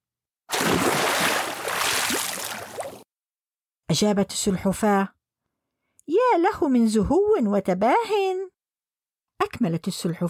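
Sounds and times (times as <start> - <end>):
large animal splashing into a river: 0.5 - 3.0
speech: 3.9 - 5.2, 6.1 - 8.5, 9.4 - 10.2.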